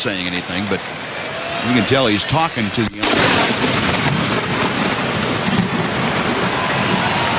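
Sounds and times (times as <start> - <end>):
speech: 0.0 - 4.1
thunder from a lightning strike during a baseball game: 3.0 - 7.3.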